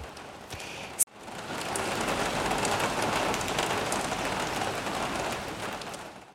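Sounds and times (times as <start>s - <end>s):
steady dense rain pattering on a surface: 0.0s - 6.3s.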